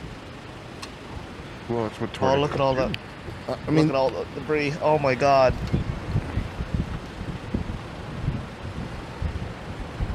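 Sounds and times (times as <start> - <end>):
speech: 1.7 - 5.8
strong storm wind buffeting the microphone: 2.3 - 10.1.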